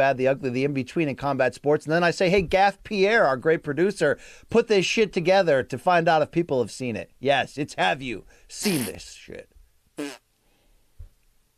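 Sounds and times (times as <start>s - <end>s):
speech: 0.0s - 10.2s
single loud short brassy flapping fart: 8.6s - 9.0s, 10.0s - 10.3s.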